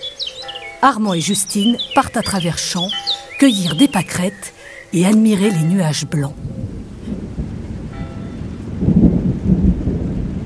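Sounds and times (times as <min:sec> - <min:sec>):
steady rain hissing in a thunderstorm: 0:00.0 - 0:10.4
speech: 0:00.8 - 0:06.6
deep rolling thunder: 0:06.3 - 0:10.4.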